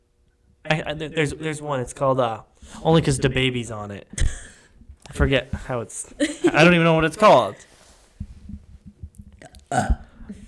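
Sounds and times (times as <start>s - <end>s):
speech: 0.7s - 4.4s, 5.1s - 7.7s, 9.7s - 10.0s
person burping: 9.4s - 10.4s.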